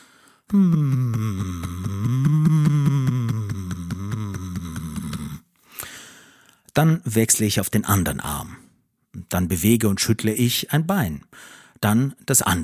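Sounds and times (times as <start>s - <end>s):
short breath: 0.0s - 0.6s, 5.6s - 6.7s, 11.3s - 11.8s
speech: 0.5s - 1.4s, 6.8s - 8.6s, 9.3s - 12.6s
person humming while tapping on the chest: 0.5s - 5.5s.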